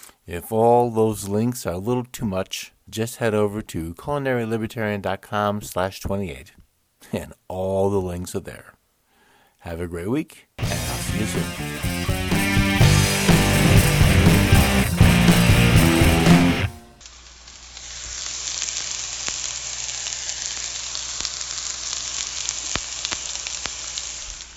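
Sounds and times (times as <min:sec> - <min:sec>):
speech: 0:00.3 - 0:08.8, 0:09.6 - 0:12.2
music: 0:10.6 - 0:17.0
hot pan giving off a high-pitched sizzle: 0:10.6 - 0:24.5.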